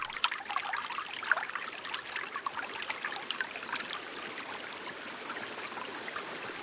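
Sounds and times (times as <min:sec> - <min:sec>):
water trickling and babbling over stones: 0:00.0 - 0:06.6.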